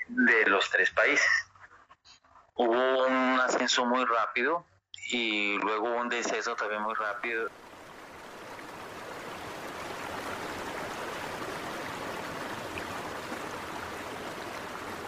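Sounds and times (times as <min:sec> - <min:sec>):
speech: 0:00.1 - 0:01.4, 0:02.6 - 0:07.7
flowing water of the Amazon River rushing: 0:07.5 - 0:15.0.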